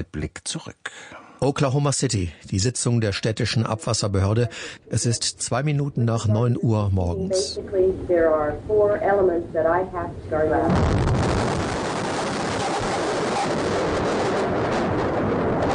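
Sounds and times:
speech: 0.0s - 11.7s
bomb explosion at the Alfred Murrah Building in Oklahoma City USA: 10.7s - 15.7s
roaring rumble and debris noise: 10.7s - 15.7s.

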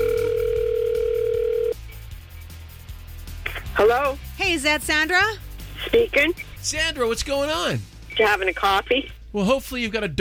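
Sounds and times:
steady telephone dial tone: 0.0s - 1.8s
speech: 3.8s - 10.1s.

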